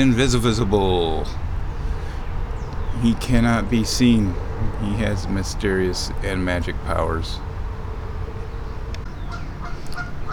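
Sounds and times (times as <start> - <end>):
speech: 0.0 - 1.5, 3.0 - 7.5
steady outdoor rumble: 0.0 - 10.3
geese honking in short nasal calls: 9.2 - 10.3.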